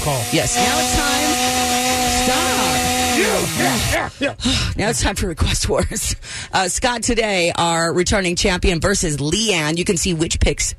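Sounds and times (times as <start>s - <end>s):
chainsaw engine droning: 0.0s - 4.1s
speech: 0.0s - 10.7s.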